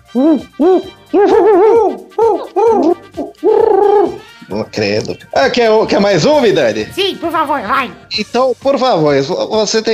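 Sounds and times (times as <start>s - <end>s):
person imitating owl hooting calls: 0.0s - 4.3s
speech: 0.1s - 9.9s.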